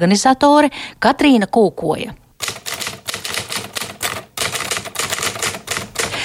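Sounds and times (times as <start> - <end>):
speech: 0.0 - 2.2
typewriter keys clacking: 2.4 - 6.2.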